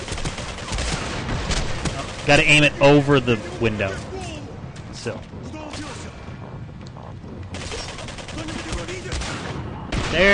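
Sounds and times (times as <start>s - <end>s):
rapid gunfire bursts in a shooting video game: 0.0s - 3.3s, 7.5s - 10.3s
speech: 2.3s - 4.1s, 5.0s - 6.0s, 10.1s - 10.3s.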